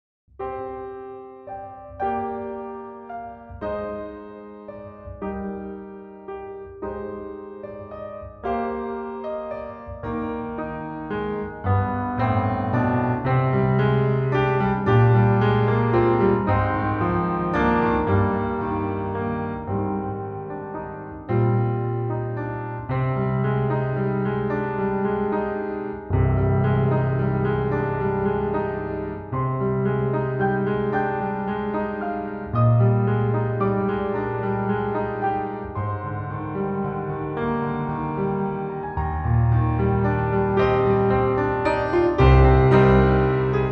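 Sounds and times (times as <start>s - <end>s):
piano piece: 0.4s - 43.6s.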